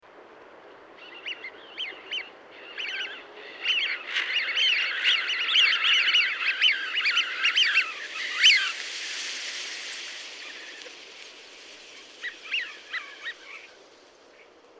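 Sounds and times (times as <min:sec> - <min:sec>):
Eurasian wigeon flight call: 0:03.4 - 0:13.8
Eurasian wigeon wing sound: 0:05.8 - 0:14.4.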